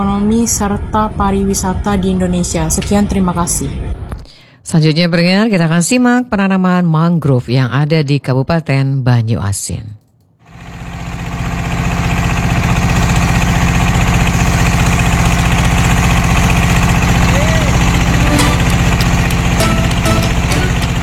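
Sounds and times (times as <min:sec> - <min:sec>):
speech: 0:00.0 - 0:03.9, 0:04.6 - 0:10.0
small ketek river motorboat engine chugging: 0:10.5 - 0:21.0.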